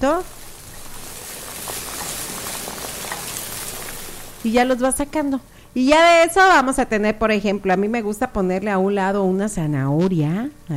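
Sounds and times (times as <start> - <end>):
speech: 0.0 - 0.4, 4.4 - 10.7
small crackles and pops of frying oil: 0.0 - 5.6
food frying in a pan with hot oil: 0.0 - 6.7.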